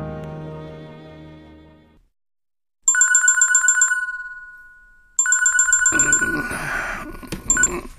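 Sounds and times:
telephone ringing with rapid trilling electronic tone: 2.9s - 6.5s, 7.5s - 7.8s.

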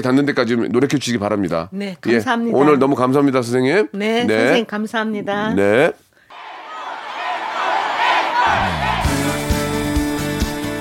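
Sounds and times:
speech: 0.0s - 6.0s
large concert audience cheering and shouting: 6.3s - 10.0s
booming live music with heavy bass notes: 8.6s - 10.7s.

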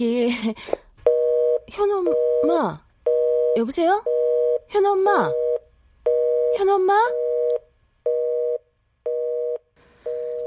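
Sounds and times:
speech: 0.0s - 0.8s, 1.7s - 2.8s, 3.6s - 4.1s, 4.7s - 5.4s, 6.5s - 7.2s
telephone busy tone after the other party hangs up: 1.1s - 2.5s, 3.1s - 4.6s, 5.3s - 10.4s
faint phone line hiss: 9.2s - 10.4s.

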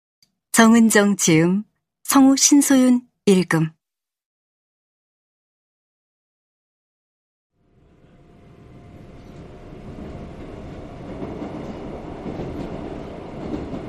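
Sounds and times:
speech: 0.6s - 3.8s
subway train rumbling on rails: 7.6s - 13.8s.

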